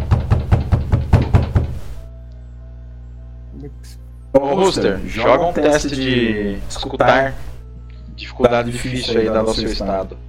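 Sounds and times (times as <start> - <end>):
heavy knocks on a door: 0.0 - 2.0
speech: 3.8 - 7.5, 8.2 - 10.2.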